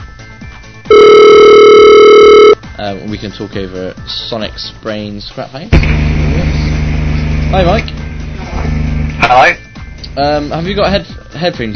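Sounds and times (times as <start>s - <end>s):
steady electronic telephone tone: 0.9s - 2.6s
speech: 2.8s - 6.6s, 7.5s - 8.0s, 9.3s - 9.6s, 10.2s - 11.7s.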